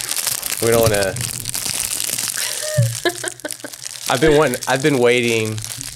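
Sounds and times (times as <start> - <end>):
crinkly crunchy crackles of packaging: 0.0 - 5.9
munching on a packaged unicorn snack cake: 0.0 - 5.9
speech: 0.6 - 1.6, 4.1 - 5.9
laughter: 2.4 - 4.8.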